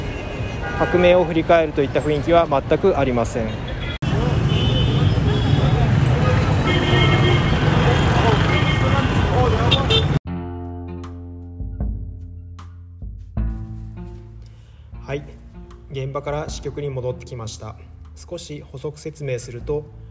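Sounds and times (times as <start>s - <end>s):
dense roar of many passing cars at a roundabout intersection: 0.0s - 10.2s, 17.6s - 20.0s
speech: 0.8s - 3.7s, 16.2s - 20.0s.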